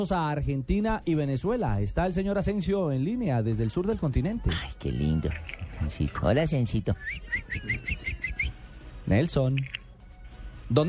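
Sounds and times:
speech: 0.0 - 8.3, 9.1 - 9.8, 10.7 - 10.8
person whistling like a small bird: 6.9 - 8.6.

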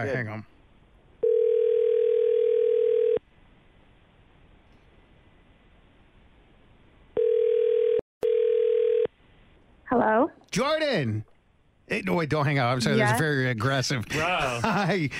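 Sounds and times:
speech: 0.0 - 0.6, 9.9 - 11.3, 11.9 - 15.1
telephone dial tone: 1.2 - 3.2, 7.2 - 9.1.

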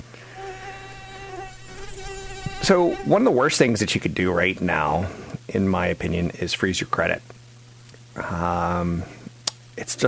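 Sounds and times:
mosquito buzzing: 0.0 - 3.3
low hum: 0.0 - 10.0
speech: 2.7 - 7.4, 8.2 - 9.2, 9.8 - 10.0.

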